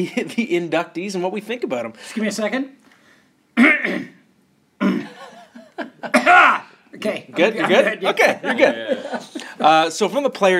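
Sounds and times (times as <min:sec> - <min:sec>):
speech: 0:00.0 - 0:02.8, 0:03.6 - 0:04.2, 0:05.8 - 0:10.5
person loudly clearing their throat: 0:03.6 - 0:04.2, 0:04.8 - 0:05.2, 0:06.1 - 0:06.7
laughter: 0:05.0 - 0:06.7, 0:07.4 - 0:09.9.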